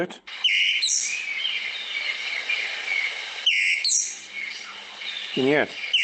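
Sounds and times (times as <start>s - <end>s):
speech: 0.0s - 0.6s, 5.4s - 5.8s
groundscraper thrush calling: 0.3s - 6.0s.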